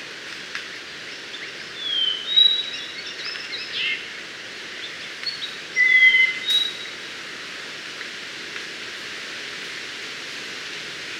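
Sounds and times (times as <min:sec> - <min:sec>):
background hiss: 0:00.0 - 0:11.1
mangrove robin Melanodryas pulverulenta whistled calls: 0:01.3 - 0:04.0, 0:05.2 - 0:07.0.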